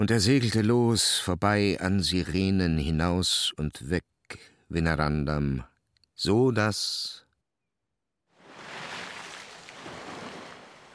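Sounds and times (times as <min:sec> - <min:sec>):
speech: 0:00.0 - 0:07.2
sea surf foaming against a cliff: 0:08.4 - 0:10.9.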